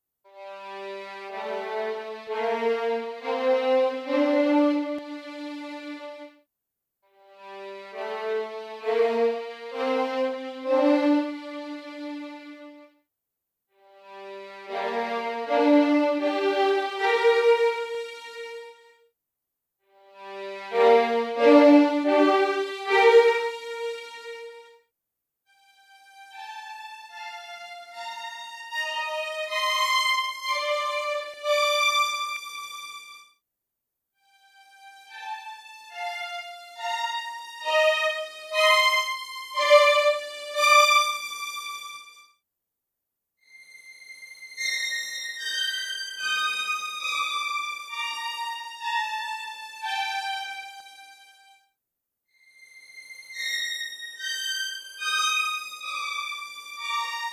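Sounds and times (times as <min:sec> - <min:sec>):
first violins playing legato close: 0:00.8 - 0:06.1, 0:07.6 - 0:12.6, 0:14.2 - 0:18.6, 0:20.2 - 0:24.6, 0:26.4 - 0:33.0, 0:35.1 - 0:42.0, 0:44.6 - 0:51.3, 0:53.4 - 0:57.3.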